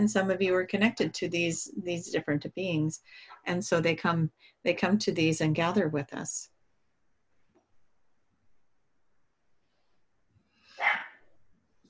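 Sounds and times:
speech: 0:00.0 - 0:06.5
dog barking sharply: 0:10.8 - 0:11.2.

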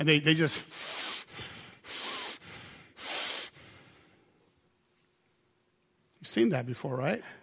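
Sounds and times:
speech: 0:00.0 - 0:01.0, 0:06.3 - 0:07.4
enraged person breathing heavily through nostrils: 0:00.6 - 0:04.2.

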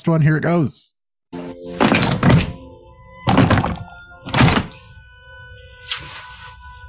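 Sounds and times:
speech: 0:00.0 - 0:00.9
doorknob rattling: 0:01.8 - 0:02.6, 0:03.3 - 0:04.8.

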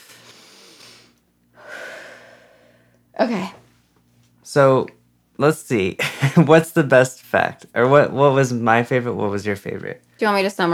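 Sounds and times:
person taking a deep breath: 0:00.2 - 0:03.0
speech: 0:03.2 - 0:03.6, 0:04.5 - 0:10.7.

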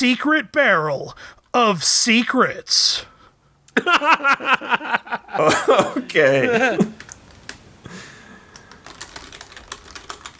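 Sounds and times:
speech: 0:00.0 - 0:03.1, 0:03.8 - 0:07.0
laughter: 0:03.8 - 0:07.0
rapid typing on a computer keyboard: 0:06.9 - 0:07.6, 0:08.5 - 0:10.3.

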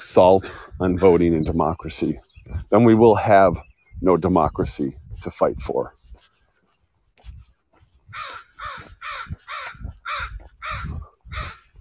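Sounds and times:
speech: 0:00.1 - 0:06.0
crow cawing: 0:08.1 - 0:11.7.

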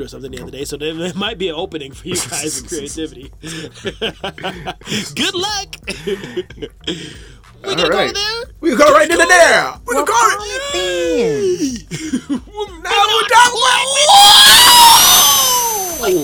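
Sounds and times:
speech: 0:00.0 - 0:15.0
laughter: 0:02.1 - 0:05.3, 0:05.9 - 0:07.2, 0:10.6 - 0:12.5
people screaming and yelling: 0:12.8 - 0:16.2.

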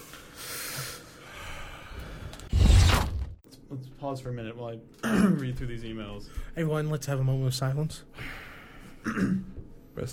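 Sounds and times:
deep breath: 0:00.2 - 0:02.5, 0:08.1 - 0:09.0
speech: 0:04.0 - 0:08.2, 0:09.0 - 0:10.1.

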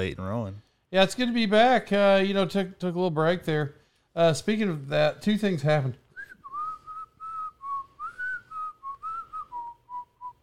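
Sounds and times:
speech: 0:00.0 - 0:06.0
person whistling a breathy tune by sucking air in: 0:06.2 - 0:10.4.

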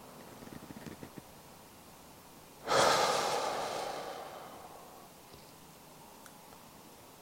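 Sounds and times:
long deep breath taken while lifting the shoulders: 0:02.6 - 0:05.2.

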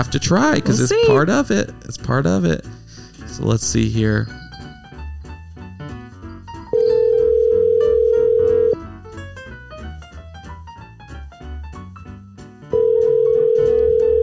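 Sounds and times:
speech: 0:00.0 - 0:02.8, 0:03.4 - 0:04.4
busy music: 0:00.0 - 0:14.2
phone ringback tone from an outgoing call: 0:06.7 - 0:08.8, 0:12.8 - 0:14.2.

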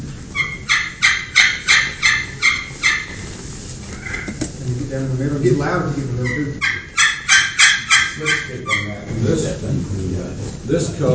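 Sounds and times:
turkey pot call yelps played halfway between lip and center: 0:00.3 - 0:03.3, 0:06.2 - 0:09.0
speech: 0:04.9 - 0:06.8, 0:08.2 - 0:11.1.

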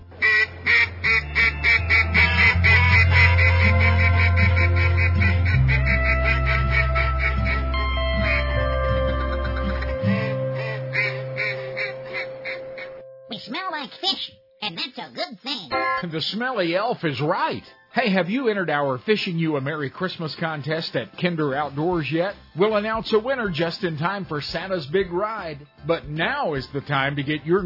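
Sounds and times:
steady low musical drone shifting pitch: 0:00.1 - 0:13.3
ducks quacking and calling: 0:00.2 - 0:13.0
speech: 0:16.2 - 0:27.6.

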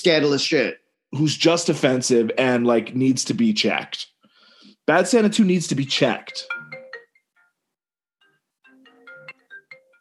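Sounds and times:
speech: 0:00.0 - 0:04.1, 0:04.8 - 0:06.6
FaceTime call ringtone on laptop: 0:06.3 - 0:07.6, 0:08.2 - 0:09.9.

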